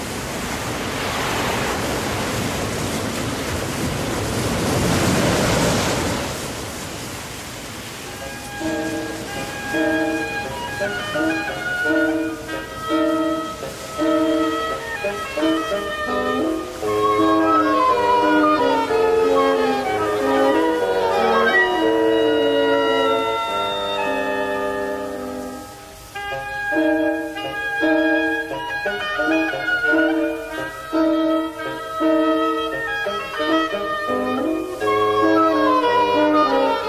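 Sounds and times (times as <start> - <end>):
flood tide waves surging in as surf: 0.0 - 36.8
music: 8.1 - 36.8.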